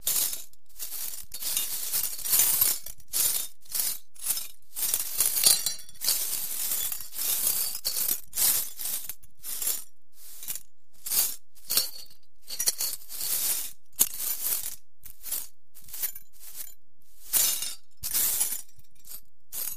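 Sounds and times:
sweeping glass on a floor: 0.0 - 19.7.

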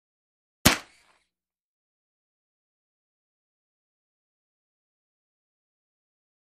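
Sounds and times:
paintball guns firing: 0.7 - 1.1.

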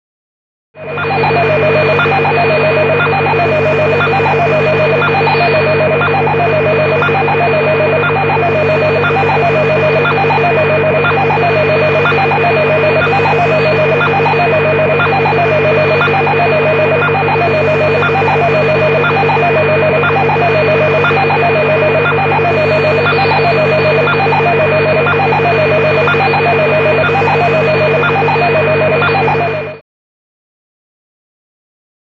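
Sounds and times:
constant radio static: 0.8 - 29.8.

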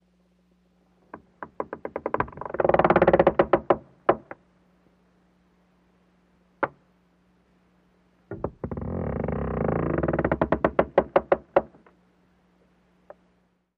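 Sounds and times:
slow wooden creaks: 1.0 - 4.4, 8.3 - 12.0.

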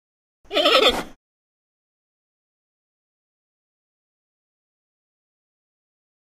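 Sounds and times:
panda bleat: 0.5 - 1.2.

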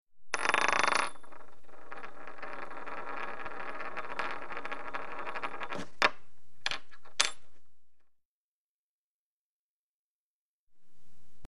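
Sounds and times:
coin spinning on floor: 0.3 - 7.4.

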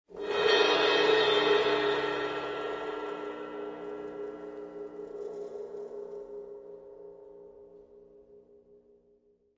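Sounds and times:
timpani: 0.1 - 5.7
large cymbal trill: 0.1 - 5.9.

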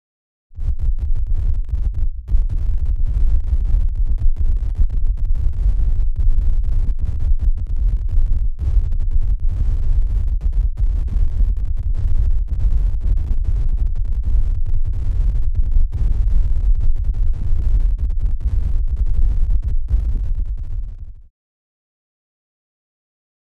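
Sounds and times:
distorted low-frequency thumps: 0.6 - 21.3.

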